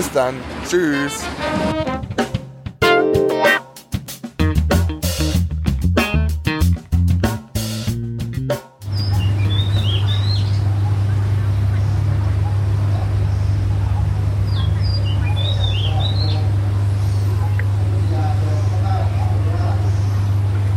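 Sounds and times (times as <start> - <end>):
speech: 0.0 - 2.2
upbeat rhythmic music: 1.0 - 9.9
small birds chirping in short high rising calls: 8.9 - 20.5.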